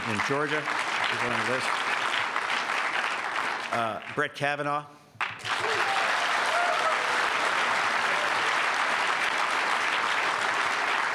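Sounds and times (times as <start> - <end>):
audience applause: 0.0 - 4.2, 5.2 - 11.1
speech: 0.1 - 1.9, 3.7 - 5.8.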